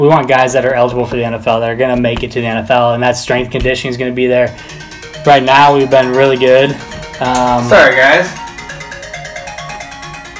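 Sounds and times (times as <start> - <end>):
speech: 0.0 - 8.4
phone ringtone from incoming call: 4.5 - 10.3.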